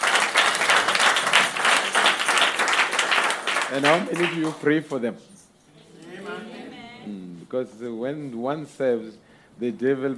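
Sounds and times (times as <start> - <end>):
audience applause for musicians: 0.0 - 4.7
speech: 3.7 - 5.4, 7.0 - 10.1.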